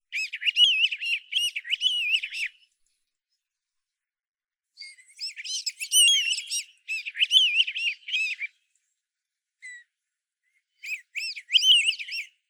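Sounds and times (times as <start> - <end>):
birds: 0.1 - 3.0, 4.8 - 9.0, 9.6 - 12.4.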